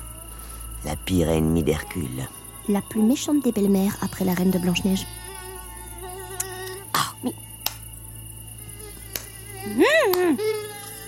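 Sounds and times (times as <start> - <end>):
thin steady mosquito whine: 0.0 - 11.0
speech: 0.8 - 5.2, 7.2 - 7.4
sharp bare hand slaps trying to kill a mosquito: 7.6 - 7.8, 9.1 - 9.3, 10.1 - 10.3.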